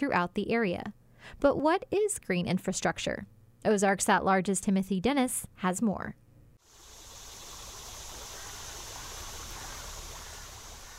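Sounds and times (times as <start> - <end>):
speech: 0.0 - 6.2
creek water flowing strongly after summer rain: 6.7 - 10.9.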